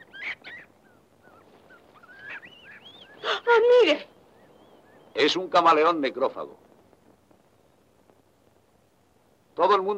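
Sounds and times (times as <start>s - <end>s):
monkey calling in the jungle: 0.0s - 4.1s
speech: 3.8s - 4.1s, 5.2s - 6.7s, 9.6s - 9.9s.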